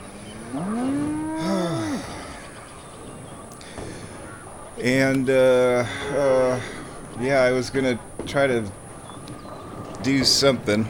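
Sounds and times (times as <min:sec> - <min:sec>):
cow mooing in a cow bowling video game: 0:00.0 - 0:02.4
steady hum: 0:00.0 - 0:10.8
speech: 0:04.8 - 0:08.8, 0:10.0 - 0:10.8.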